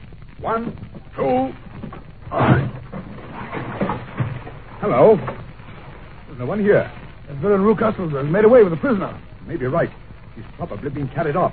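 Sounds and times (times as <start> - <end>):
speech: 0.4 - 1.7, 2.3 - 2.8, 4.8 - 5.4, 6.4 - 11.5
locked door forced open with a heavy thump and crash: 1.8 - 5.5.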